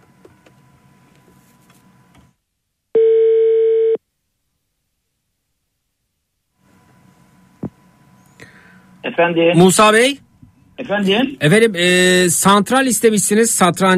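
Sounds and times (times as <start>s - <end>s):
telephone ringback tone: 3.0s - 4.0s
speech: 9.2s - 10.2s, 10.9s - 13.9s.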